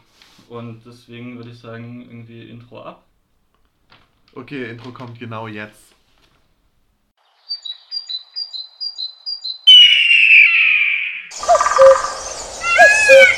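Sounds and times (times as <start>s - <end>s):
speech: 0.5s - 3.1s, 4.4s - 6.0s
birds chirping: 7.2s - 13.3s.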